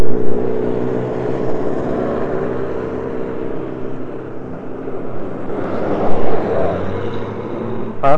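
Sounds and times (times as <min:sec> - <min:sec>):
traffic rumble with engine drone and tire noise: 0:00.0 - 0:08.1.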